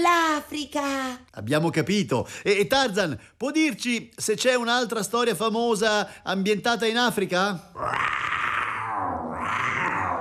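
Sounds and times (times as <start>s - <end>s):
speech: 0.4s - 9.7s
person imitating a lion's roar with a rough sustained growl: 7.8s - 10.1s.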